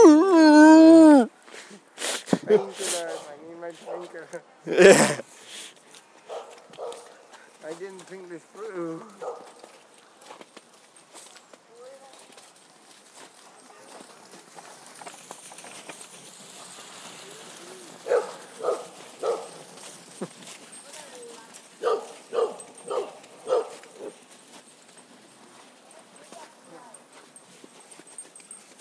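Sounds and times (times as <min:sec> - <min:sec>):
person imitating a whimpering dog: 0:00.0 - 0:01.3
outdoor bustle: 0:00.0 - 0:28.7
speech: 0:02.5 - 0:02.9, 0:03.8 - 0:05.2
dogs barking: 0:06.3 - 0:07.1, 0:09.2 - 0:09.6, 0:18.0 - 0:19.6, 0:21.8 - 0:24.2.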